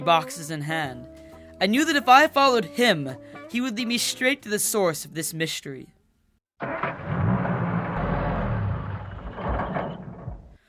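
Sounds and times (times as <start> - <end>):
speech: 0.0 - 6.0
Escort car engine grinding while failing to start: 6.6 - 10.6.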